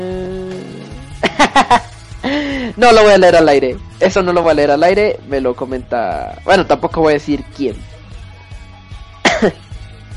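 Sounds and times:
laughter: 1.2 - 1.9
speech: 2.8 - 7.9, 9.4 - 9.6
person coughing: 9.3 - 9.7.

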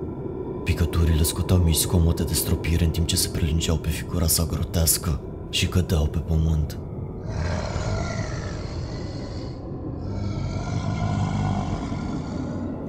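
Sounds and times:
speech: 0.9 - 7.7
deep rumbling raspy monster groans: 7.2 - 12.8.

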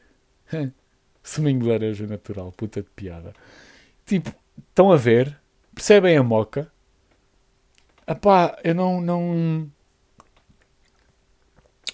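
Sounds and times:
speech: 0.5 - 6.7, 8.1 - 9.8
soft wet mouth clicks while drinking water: 10.2 - 11.9.

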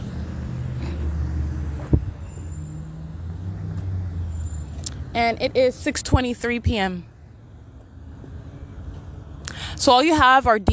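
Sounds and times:
steady low rumble of passing car traffic: 0.0 - 10.7
speech: 5.2 - 7.1, 9.8 - 10.7.

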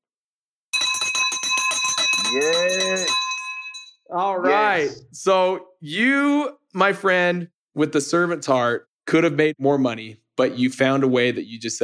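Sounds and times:
victory bell ringing: 0.8 - 4.0
speech: 2.3 - 3.2, 4.1 - 11.8.

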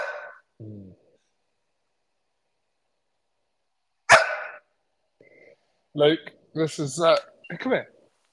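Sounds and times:
dog barking: 0.0 - 0.4, 4.1 - 4.7
speech: 0.6 - 0.8, 6.0 - 8.0.

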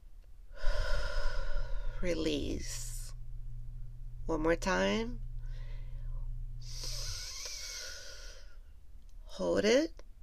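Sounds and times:
deep breath drawn in during a mindfulness exercise: 0.5 - 2.0, 5.4 - 8.6
speech: 2.0 - 2.9, 4.3 - 5.3, 9.4 - 10.0.

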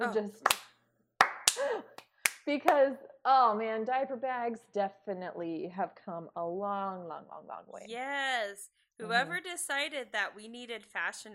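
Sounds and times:
speech: 0.0 - 0.6, 1.6 - 11.3
slow deliberate hand claps: 0.4 - 2.8
people talking softly: 9.0 - 9.4.

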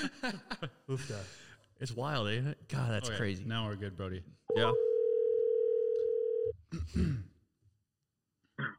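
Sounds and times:
speech: 0.0 - 4.9, 6.7 - 7.3
telephone dial tone before a call: 4.8 - 6.5.

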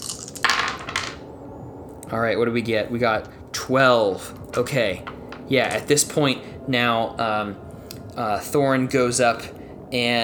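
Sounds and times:
dice rattling and tumbling across a hard table: 0.0 - 1.2
speech: 2.1 - 7.6, 8.2 - 10.2.

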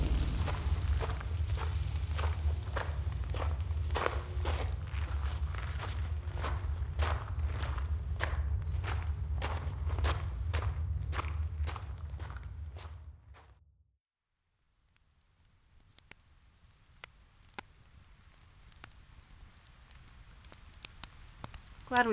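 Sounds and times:
rain falling steadily with drops ticking: 0.0 - 12.9, 14.8 - 22.1
rumbling with regular thumps: 0.0 - 13.6
speech: 21.9 - 22.1.

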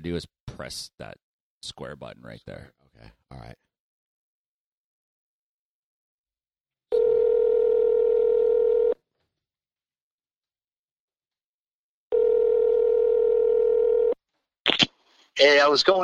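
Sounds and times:
speech: 0.0 - 3.6, 15.4 - 16.0
buzzy telephone tone while a call is placed: 6.9 - 9.0, 12.1 - 14.2.

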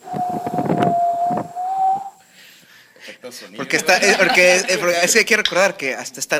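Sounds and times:
howling wind sound effect from a film: 0.0 - 2.2
laughter: 3.0 - 5.3
speech: 3.3 - 6.3.

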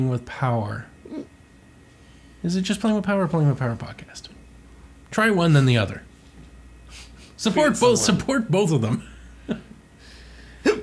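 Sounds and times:
speech: 0.0 - 0.9, 2.4 - 4.4, 5.1 - 6.1, 6.9 - 9.7
faint hum: 0.0 - 10.8
hiccups: 1.0 - 1.4.

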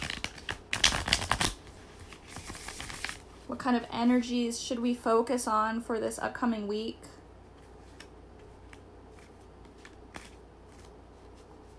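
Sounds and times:
deck of tarot cards being shuffled: 0.0 - 3.2, 7.6 - 11.7
speech: 3.5 - 7.1.

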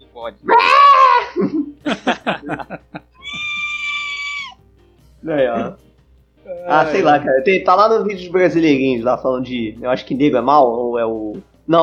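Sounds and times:
speech: 0.2 - 1.6, 6.8 - 11.8
goat screaming: 0.4 - 1.4, 3.2 - 4.6
laughter: 1.2 - 4.0.

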